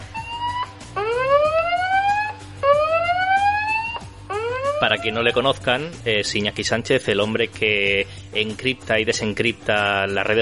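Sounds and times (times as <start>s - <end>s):
spoiler alarm siren sound effect: 0.0s - 5.2s
speech: 4.8s - 10.4s.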